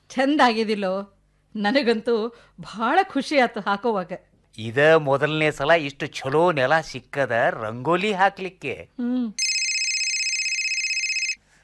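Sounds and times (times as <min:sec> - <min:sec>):
speech: 0:00.1 - 0:09.4
electronic telephone ringing in a home: 0:09.4 - 0:11.4.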